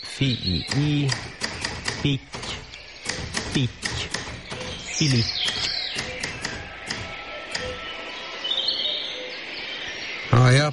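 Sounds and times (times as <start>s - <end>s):
small songbirds chirping and twittering in a garden: 0.0s - 10.7s
speech: 0.2s - 1.4s, 2.0s - 2.4s, 3.6s - 4.1s, 5.0s - 5.6s
sharp tapping knocks: 0.6s - 7.9s.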